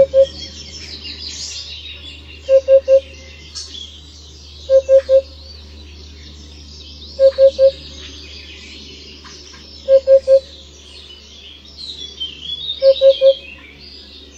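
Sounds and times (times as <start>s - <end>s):
Eurasian hoopoe giving low mellow triple hoots: 0.0s - 0.8s, 2.4s - 3.3s, 4.6s - 5.4s, 7.2s - 7.9s, 9.8s - 10.6s, 12.7s - 13.6s
small birds twittering: 0.0s - 14.3s.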